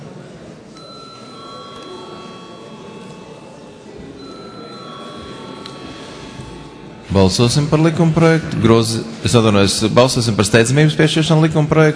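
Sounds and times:
low murmur of room noise: 0.0 - 11.9
electric bell ringing in a parliament chamber before a vote: 0.8 - 8.2
speech: 7.1 - 11.9.

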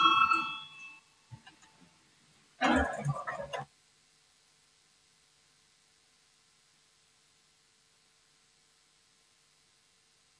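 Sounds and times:
parliament chamber bell rung before a vote: 0.0 - 1.0.

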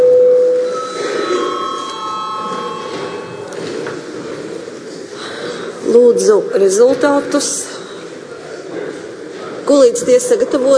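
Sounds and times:
electric bell ringing in a parliamentary chamber to call the session to order: 0.0 - 3.8
speech: 6.2 - 7.6, 9.7 - 10.7.

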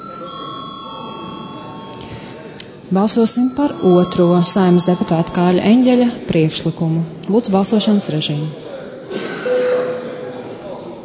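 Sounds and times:
electric bell rung in a parliament chamber before a vote: 0.0 - 6.3
speech: 2.9 - 8.7.

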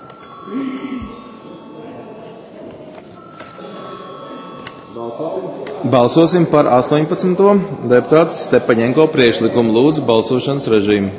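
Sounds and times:
electronic voting bell ringing in a parliament chamber: 0.0 - 7.0
murmur of voices: 0.0 - 11.1
speech: 0.4 - 1.0, 5.1 - 11.1.

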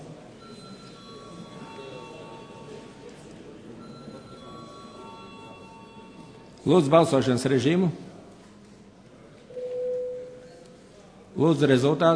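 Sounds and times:
bell rung in parliament to call a vote: 0.4 - 2.9, 3.8 - 6.4
speech: 6.7 - 8.0, 11.4 - 12.1.

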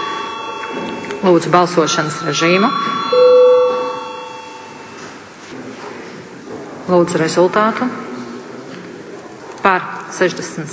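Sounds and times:
bell ringing in a parliament chamber before a vote: 0.0 - 5.4
speech: 1.2 - 3.2, 6.9 - 8.1, 9.6 - 10.7.

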